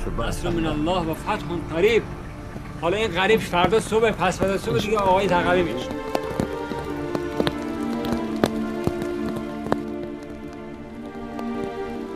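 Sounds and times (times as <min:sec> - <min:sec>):
speech: 0:00.0 - 0:06.1
steady rain falling: 0:00.0 - 0:12.1
rain drops hitting a surface: 0:02.6 - 0:11.8.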